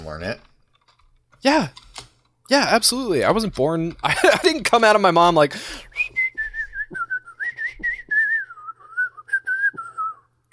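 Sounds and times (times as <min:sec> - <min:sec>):
speech: 0:00.1 - 0:00.5, 0:01.4 - 0:01.8, 0:02.5 - 0:06.1
person whistling a wavering sliding melody: 0:05.9 - 0:10.3.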